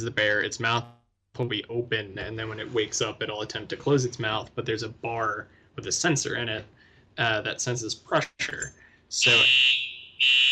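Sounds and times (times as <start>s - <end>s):
speech: 0.0s - 10.5s
loud piercing fire alarm with high electronic tone: 9.2s - 10.5s.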